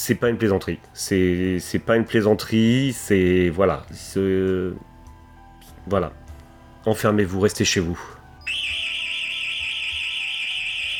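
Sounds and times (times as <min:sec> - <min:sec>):
speech: 0:00.0 - 0:04.9, 0:05.8 - 0:06.2, 0:06.8 - 0:08.7
intruder alarm high-pitched electronic tone: 0:08.4 - 0:10.9.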